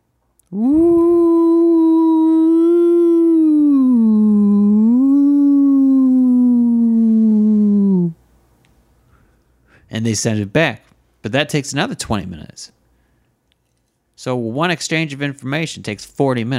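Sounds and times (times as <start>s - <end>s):
person imitating a whale call: 0.4s - 8.2s
speech: 0.5s - 0.9s, 10.1s - 12.8s, 14.2s - 16.5s.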